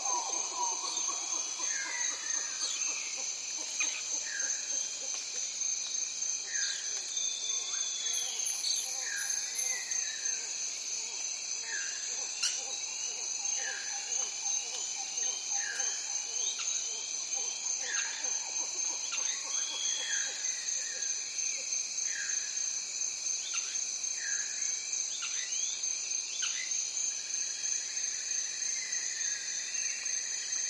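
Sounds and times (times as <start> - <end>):
dense insect chorus buzzing in Amazon rainforest morning: 0.0 - 30.6.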